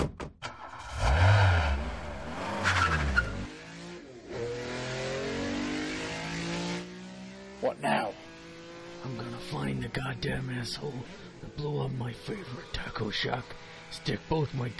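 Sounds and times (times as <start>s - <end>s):
car engine revving hard: 0.5s - 14.7s
car tires squealing while skidding: 0.6s - 3.6s
speech: 7.7s - 8.2s, 9.0s - 14.7s.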